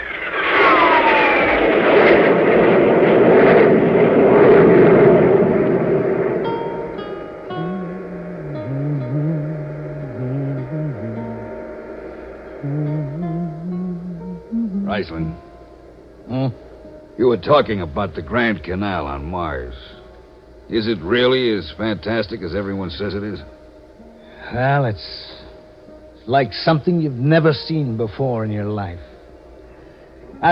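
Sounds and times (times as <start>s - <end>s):
spaceship jet drive roaring on all jets: 0.0s - 14.0s
speech: 17.4s - 20.0s, 20.7s - 23.6s, 24.5s - 25.3s, 26.3s - 29.1s.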